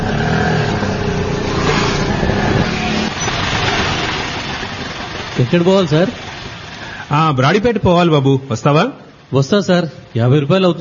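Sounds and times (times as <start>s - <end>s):
auto rickshaw engine rumbling near a station after midnight: 0.0s - 10.8s
speech: 5.5s - 6.2s, 7.1s - 10.8s.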